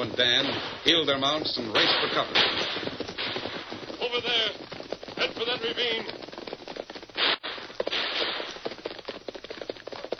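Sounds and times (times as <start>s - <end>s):
speech: 0.0s - 3.0s, 4.1s - 6.2s
gunfire in a gunfight: 0.2s - 4.4s, 7.2s - 8.8s.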